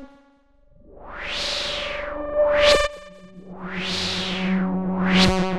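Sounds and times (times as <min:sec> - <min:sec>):
musical swell: 0:01.0 - 0:05.4.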